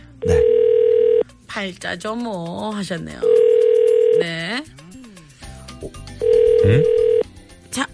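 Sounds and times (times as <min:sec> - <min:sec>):
outgoing phone call ringing tone: 0:00.2 - 0:01.2, 0:03.2 - 0:04.3, 0:06.2 - 0:07.3
speech: 0:01.6 - 0:03.4, 0:04.2 - 0:04.8, 0:05.8 - 0:06.0, 0:06.6 - 0:07.0.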